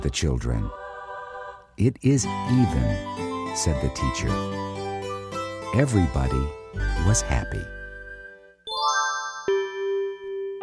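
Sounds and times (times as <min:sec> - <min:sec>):
speech: 0:00.0 - 0:00.8, 0:01.8 - 0:04.8, 0:05.7 - 0:07.8
school bell chiming in clear ringing tones: 0:05.4 - 0:10.6.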